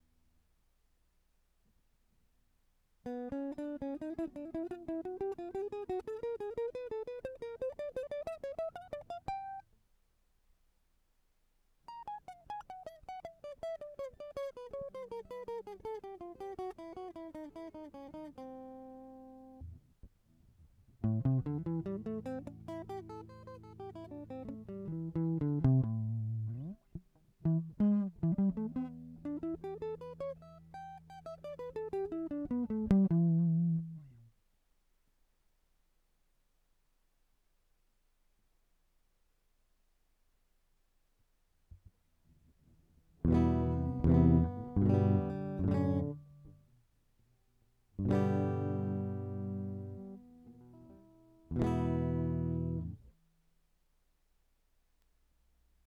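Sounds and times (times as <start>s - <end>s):
guitar amplifier: 3.1s - 9.6s, 12.0s - 19.8s, 21.0s - 34.3s, 43.2s - 46.7s, 48.0s - 53.1s.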